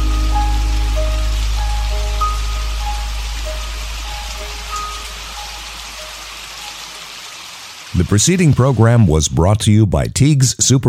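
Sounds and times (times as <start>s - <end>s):
soft sustained musical tones: 0.0s - 7.0s
steady rain: 0.0s - 9.2s
speech: 8.0s - 10.8s.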